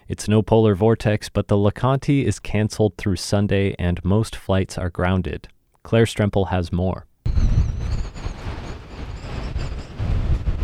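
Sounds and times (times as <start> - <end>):
speech: 0.1 - 7.6
faint thin whistle: 7.3 - 10.2
strong gusting wind: 7.3 - 10.6.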